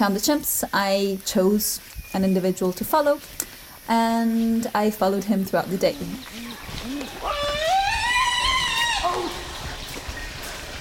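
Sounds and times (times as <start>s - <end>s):
speech: 0.0s - 7.7s
other chimpanzees calling: 5.8s - 10.7s.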